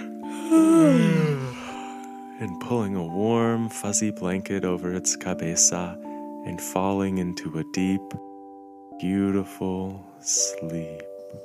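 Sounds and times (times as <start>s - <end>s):
person yawning in imitation of a ladybug settling into bed: 0.3s - 2.0s
speech: 0.5s - 1.1s, 2.4s - 8.3s, 9.0s - 11.4s.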